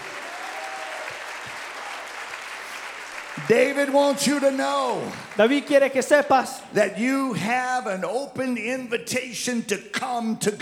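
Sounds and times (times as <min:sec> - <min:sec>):
congregation clapping hands during a church service: 0:00.0 - 0:06.4
speech: 0:03.4 - 0:10.5.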